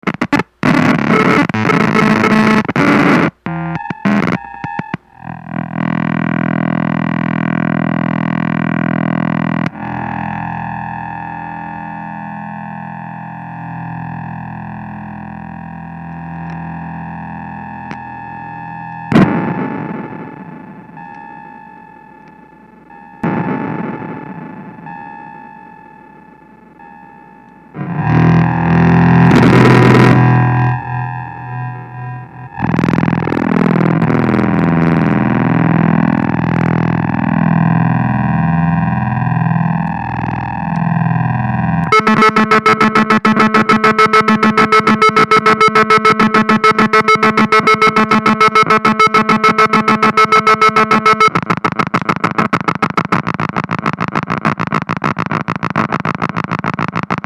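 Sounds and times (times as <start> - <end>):
Casio electronic keyboard noise: 0.0 - 57.2.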